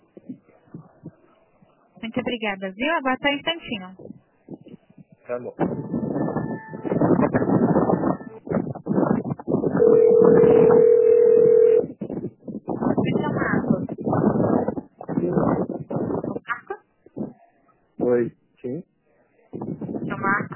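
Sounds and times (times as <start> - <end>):
conversation: 0.1 - 20.5
speech: 2.1 - 4.1, 5.3 - 6.0
phone line ringing during call transfer: 9.8 - 11.8.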